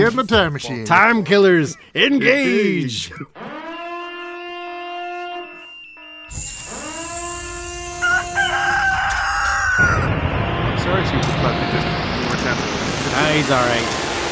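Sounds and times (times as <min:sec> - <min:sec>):
speech: 0:00.0 - 0:03.4, 0:13.2 - 0:14.0
broad noisy rush: 0:06.3 - 0:14.2
rooster crowing: 0:06.4 - 0:10.3.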